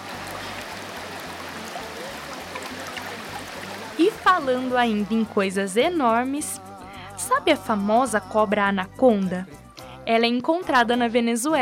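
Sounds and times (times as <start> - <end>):
waterfall with water plunging from great height: 0.0 - 5.2
speech: 4.0 - 6.6, 7.4 - 11.6.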